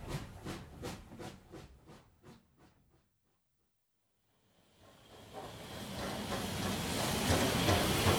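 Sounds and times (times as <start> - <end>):
passenger steam train chuffing: 0.0 - 2.4, 4.7 - 8.1
loud hiss of escaping steam: 4.8 - 8.1.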